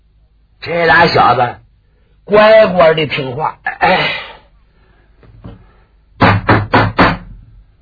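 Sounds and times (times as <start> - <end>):
speech: 0.6 - 1.6, 2.3 - 4.2
heavy knocks on closed main wooden gate of a mansion: 6.2 - 7.4.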